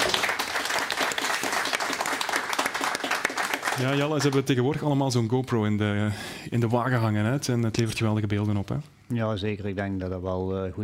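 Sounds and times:
studio audience applause: 0:00.0 - 0:04.6
speech: 0:03.8 - 0:10.8.

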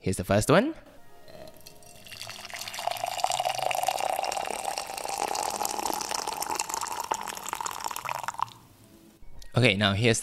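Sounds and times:
speech: 0:00.0 - 0:00.9, 0:09.6 - 0:10.2
room-temperature water pouring into an empty cup: 0:01.5 - 0:08.6.

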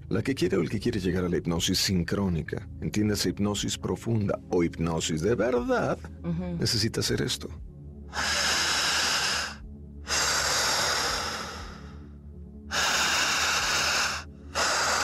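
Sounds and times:
speech: 0:00.1 - 0:08.6
heavy panting breaths through an open mouth: 0:08.1 - 0:15.0.

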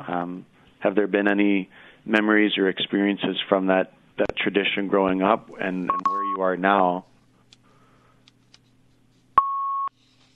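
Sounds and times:
speech: 0:00.0 - 0:07.1
quiet low hum: 0:00.0 - 0:10.3
steady electronic beep on a phone line during a radio call: 0:05.9 - 0:06.3, 0:09.4 - 0:09.9.

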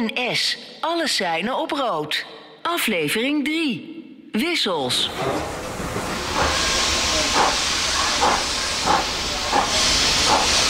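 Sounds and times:
speech: 0:00.0 - 0:05.6
loud hiss of steam from an enormous steam locomotive: 0:05.0 - 0:10.6.

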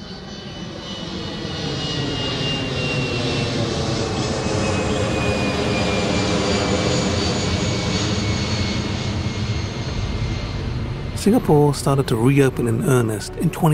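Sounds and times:
jet aircraft climbing after takeoff from Changi airport in Singapore: 0:00.0 - 0:13.7
speech: 0:11.2 - 0:13.7.

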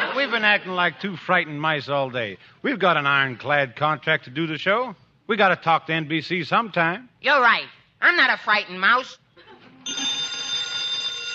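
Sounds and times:
speech: 0:00.2 - 0:09.2
telephone bell ringing: 0:09.8 - 0:11.3.

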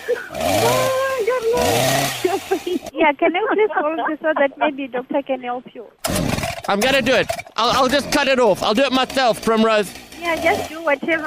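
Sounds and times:
person imitating a chainsaw starting up: 0:00.0 - 0:02.9, 0:06.0 - 0:11.2
speech: 0:01.5 - 0:06.1, 0:06.7 - 0:11.2.

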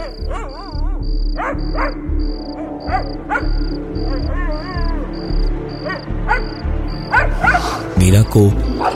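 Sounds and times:
dog barking and yelping outside on a house veranda at night: 0:00.0 - 0:04.7, 0:05.8 - 0:07.9, 0:08.7 - 0:08.9
crickets chirping at night: 0:00.0 - 0:07.9
speech: 0:08.0 - 0:08.7.

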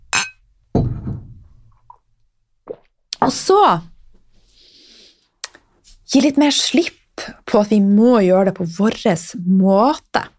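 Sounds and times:
glasses clinking in a toast: 0:00.1 - 0:00.9
speech: 0:03.3 - 0:03.9, 0:06.1 - 0:10.3.

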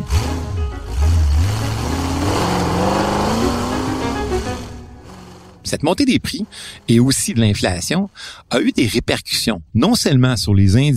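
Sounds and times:
small car engine revving: 0:00.0 - 0:07.2
speech: 0:05.7 - 0:10.9.

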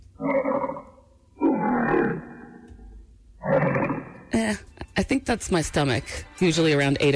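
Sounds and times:
lion roar from an early film logo: 0:00.2 - 0:04.4
speech: 0:04.4 - 0:07.1.

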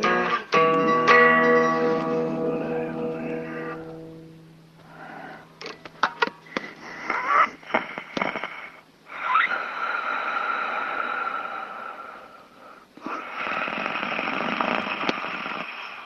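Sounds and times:
heavy tape hiss: 0:00.0 - 0:16.0
man snoring on an old tape recording: 0:07.1 - 0:16.0.

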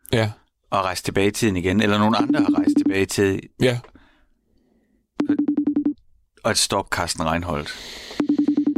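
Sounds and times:
speech: 0:00.1 - 0:03.9, 0:06.4 - 0:08.2
unanswered telephone call ringing tone with rapid buzzing pulses: 0:02.1 - 0:03.0, 0:05.2 - 0:06.0, 0:08.2 - 0:08.7.

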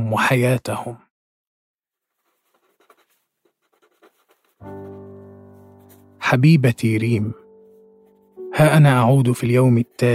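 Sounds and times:
speech: 0:00.1 - 0:01.0, 0:06.3 - 0:07.4, 0:08.5 - 0:10.1
pen scratching on paper writing a letter: 0:02.0 - 0:10.1.

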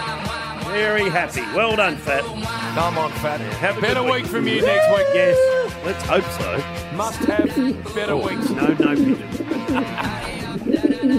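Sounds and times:
speech: 0:00.7 - 0:11.1
laughter: 0:03.8 - 0:05.6, 0:07.1 - 0:11.1
pigeons cooing: 0:07.1 - 0:11.1.

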